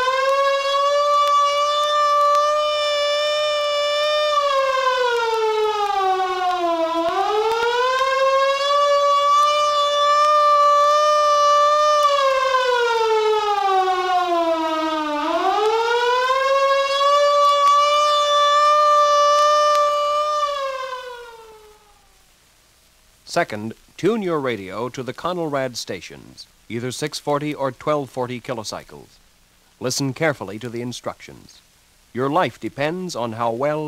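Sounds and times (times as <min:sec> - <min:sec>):
1961 civil defense take-cover siren wailing: 0:00.0 - 0:22.2
speech: 0:23.4 - 0:29.2, 0:29.8 - 0:33.8.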